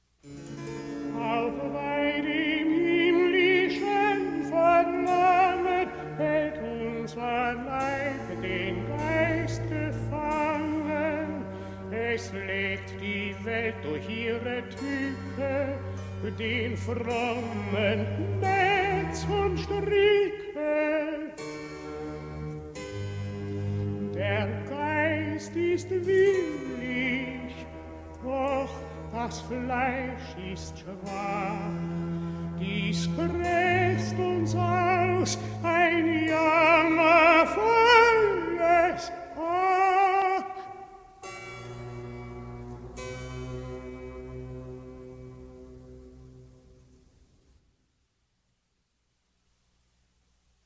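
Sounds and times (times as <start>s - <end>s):
tenor singing a cantata recitative: 1.1s - 21.6s, 24.0s - 41.4s.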